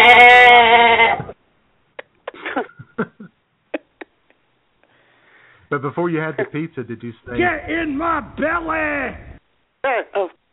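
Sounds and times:
goat bleating: 0.0 - 1.3
speech: 5.7 - 10.5.

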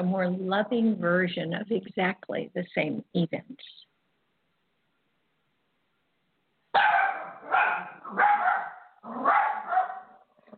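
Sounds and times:
speech: 0.0 - 3.9
watch dog barking: 6.7 - 10.5.

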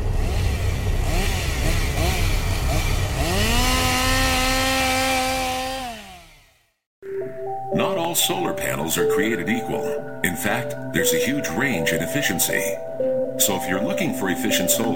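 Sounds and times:
chainsaw engine revving: 0.2 - 6.7
speech: 8.2 - 14.9.

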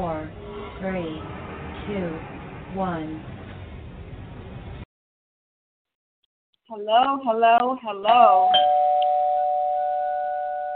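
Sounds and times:
speech: 0.0 - 3.4, 6.7 - 8.8
electronic doorbell chime: 8.2 - 10.7.

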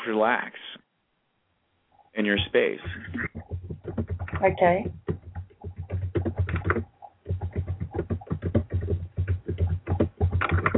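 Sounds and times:
speech: 0.1 - 0.7, 2.2 - 3.5, 4.4 - 5.0
typing on a keyboard: 2.7 - 10.7.

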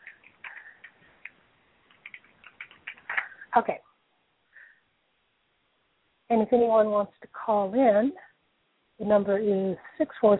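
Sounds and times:
typing on a computer keyboard: 0.0 - 3.4
speech: 3.6 - 3.9, 6.3 - 8.2, 9.0 - 10.3.

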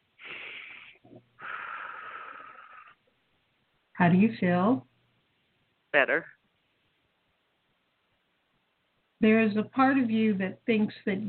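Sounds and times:
slow deep breath in and long steady exhale: 0.2 - 3.0
speech: 4.0 - 4.9, 6.0 - 6.4, 9.2 - 11.2.

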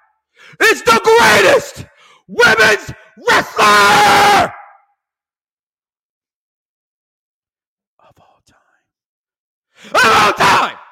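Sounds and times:
speech: 0.5 - 4.6
man whispering in short breathy bursts: 8.0 - 9.0.

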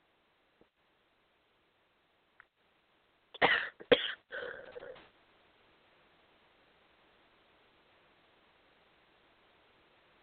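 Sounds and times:
raspy coughing fit: 3.4 - 5.0.

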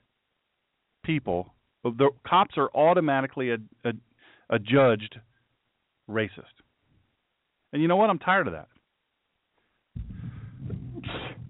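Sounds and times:
speech: 1.1 - 5.3, 6.1 - 6.6, 7.7 - 8.7
loud sneeze with breathy exhale: 10.9 - 11.4.

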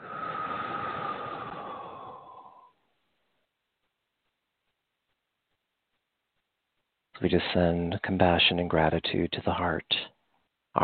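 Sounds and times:
deep breath out during a guided heart-centred healing meditation: 0.0 - 2.9
speech: 7.2 - 10.1.

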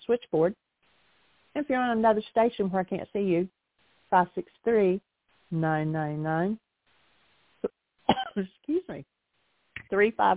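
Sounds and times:
speech: 0.1 - 0.7, 1.6 - 6.6, 8.4 - 9.1, 9.9 - 10.3
person coughing after swallowing wrong: 8.1 - 8.5
person clearing throat after swallowing wrong: 8.1 - 8.6.

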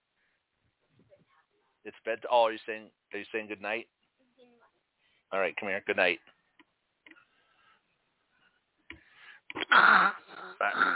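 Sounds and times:
speech: 1.8 - 4.0, 5.3 - 6.3, 9.5 - 10.9
child breathing into a microphone: 7.2 - 9.5.

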